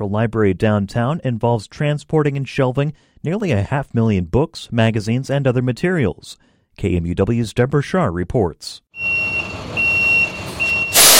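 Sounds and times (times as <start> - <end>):
speech: 0.0 - 9.1
small moving truck reversing alarm beeps: 9.0 - 11.1
loud hiss: 10.9 - 11.1.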